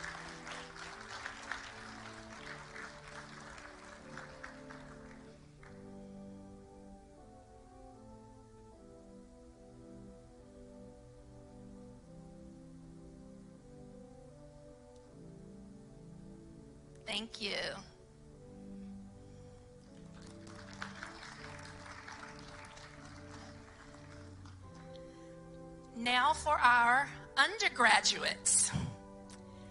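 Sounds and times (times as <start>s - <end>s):
audience applause for graduates: 0.0s - 5.9s, 19.8s - 25.1s
sustained organ-like music: 0.0s - 17.0s, 18.0s - 26.9s
speech: 17.1s - 17.9s, 26.7s - 28.6s.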